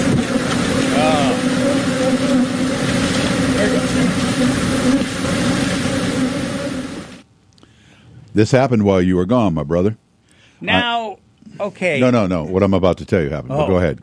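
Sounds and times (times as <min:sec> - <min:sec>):
swarm of bees buzzing around overturned truck: 0:00.0 - 0:07.2
faint rising whine: 0:00.0 - 0:07.3
speech: 0:08.4 - 0:10.0, 0:10.6 - 0:14.0.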